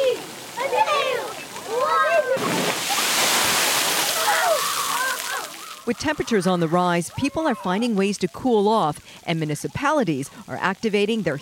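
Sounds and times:
excited voices shouting: 0:00.0 - 0:03.1, 0:04.0 - 0:07.9
large tipping bucket dumping water with a big splash: 0:00.0 - 0:06.4
heavy steady cascade of water from a tipping bucket: 0:00.0 - 0:11.4
speech: 0:05.9 - 0:11.4.

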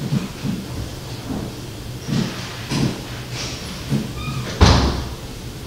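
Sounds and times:
door shutting: 0:00.2 - 0:05.2.

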